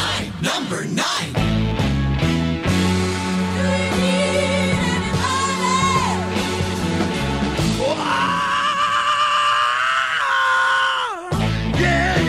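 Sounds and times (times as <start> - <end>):
speech: 0.4 - 1.5
full rock band playing: 1.3 - 8.6, 11.2 - 12.2
rock singer screaming over a full band: 7.6 - 12.2.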